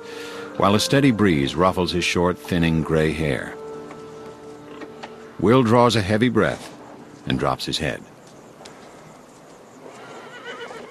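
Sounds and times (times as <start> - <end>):
speech: 0.6 - 3.6, 5.4 - 8.1
horse hooves clip-clopping as riders arrive leading a string of horses: 2.3 - 10.8
horses neighing as riders arrive: 3.1 - 7.2, 8.7 - 10.8.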